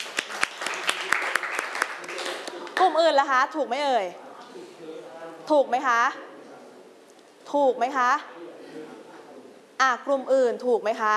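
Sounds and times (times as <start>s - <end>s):
students clapping in a classroom: 0.0s - 3.0s
speech: 2.8s - 6.2s, 7.5s - 8.4s, 9.8s - 11.1s.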